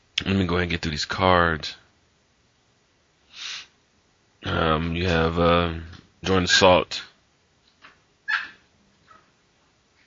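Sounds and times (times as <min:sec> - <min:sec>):
speech: 0:00.3 - 0:01.8, 0:04.4 - 0:07.1
dog yelping: 0:08.2 - 0:09.4
agitated dog barking: 0:08.3 - 0:09.3.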